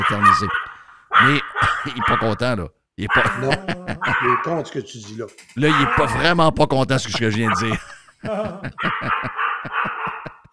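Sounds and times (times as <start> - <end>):
guard dog yelping and barking: 0.0 - 2.4, 3.1 - 4.8, 5.6 - 6.5, 7.2 - 7.8, 8.8 - 10.4
speech: 0.1 - 0.6, 1.2 - 9.8
laughter: 3.0 - 4.8, 5.7 - 10.5.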